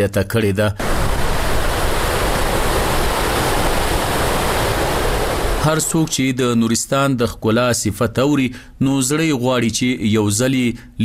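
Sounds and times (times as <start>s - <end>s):
speech: 0.0s - 1.2s, 5.6s - 11.0s
river of clear clean water flowing through Parun in Nuristan: 0.8s - 6.2s.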